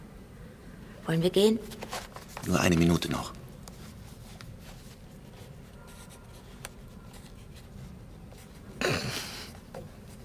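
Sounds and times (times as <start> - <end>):
speech: 1.0 - 3.4
paper rustling: 1.7 - 8.7.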